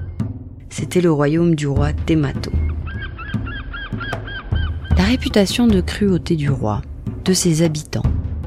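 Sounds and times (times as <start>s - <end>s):
speech: 0.7s - 2.6s, 5.0s - 8.1s
seagulls crying with harsh nasal calls: 2.6s - 5.6s.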